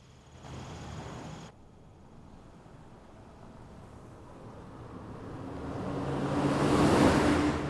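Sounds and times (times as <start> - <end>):
car driving past on a road beside an open field at night: 3.5 - 7.6.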